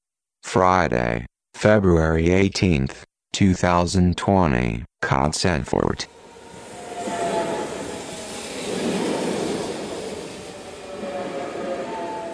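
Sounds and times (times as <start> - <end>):
speech: 0.5 - 6.2
train arriving on rails: 6.0 - 12.3
thin metallic squealing tones: 6.1 - 12.3.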